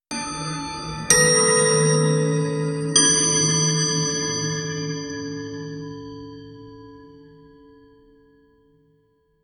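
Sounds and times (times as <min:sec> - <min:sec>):
slow eerie staccato clock ticking: 0:00.1 - 0:05.2.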